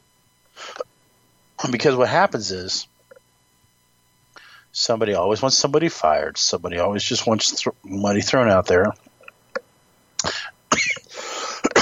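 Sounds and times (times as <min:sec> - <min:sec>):
person coughing from a dry throat: 0:00.6 - 0:00.8, 0:10.2 - 0:11.7
speech: 0:01.6 - 0:02.9, 0:04.8 - 0:09.0
throat clearing from a dry throat: 0:10.2 - 0:11.7.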